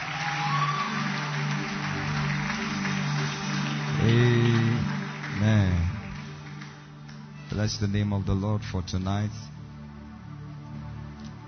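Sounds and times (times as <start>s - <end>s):
crowd clapping: 0.0s - 8.0s
sustained low musical tone: 1.3s - 11.4s
speech: 7.6s - 9.5s.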